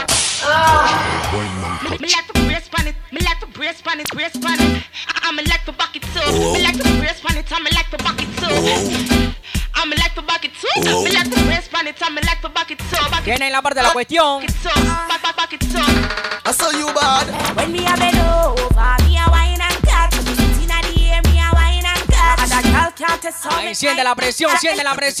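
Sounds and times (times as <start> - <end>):
sharp loud whip crack: 0.0 - 0.5
upbeat music with punchy percussive hits and vocals: 0.0 - 25.1
speech: 3.7 - 9.1, 9.8 - 19.0, 23.2 - 25.1.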